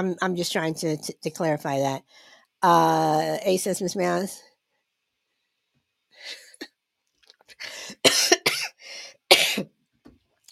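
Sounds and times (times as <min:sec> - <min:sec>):
speech: 0:00.0 - 0:04.5
person coughing fit: 0:07.9 - 0:09.7.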